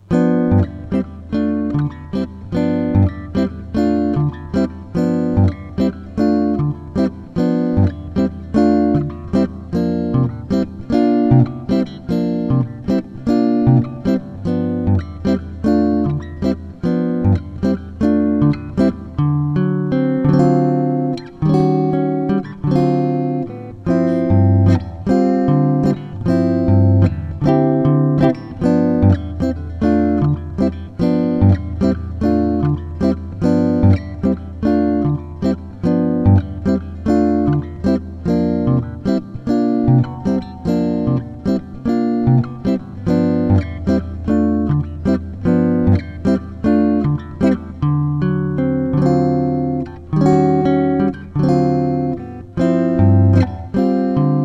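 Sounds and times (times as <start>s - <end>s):
jazz comping: 0.1s - 54.4s.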